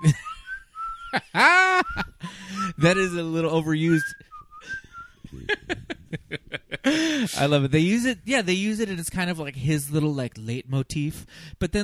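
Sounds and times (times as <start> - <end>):
person whistling a movie character's theme tune: 0.0 - 1.2, 1.8 - 3.0, 4.0 - 5.4
people laughing: 0.0 - 2.3, 5.3 - 7.4
speech: 1.1 - 2.1, 2.8 - 4.3, 7.3 - 11.8.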